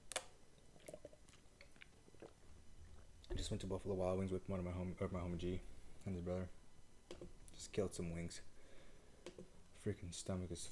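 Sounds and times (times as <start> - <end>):
person taking a sip of a drink: 0.1 - 3.1
soft wet mouth clicks and small swallowing sounds: 0.6 - 3.1
speech: 3.4 - 8.5, 9.3 - 10.6.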